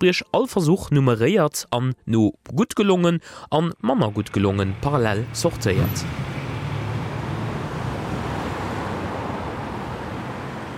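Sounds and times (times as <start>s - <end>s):
speech: 0.0s - 6.4s
road traffic passing outside a church: 4.0s - 10.7s.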